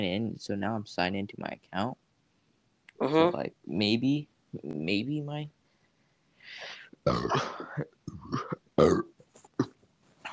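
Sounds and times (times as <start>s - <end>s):
speech: 0.0s - 2.0s, 3.0s - 5.6s, 6.5s - 9.1s
person burping: 7.1s - 9.1s.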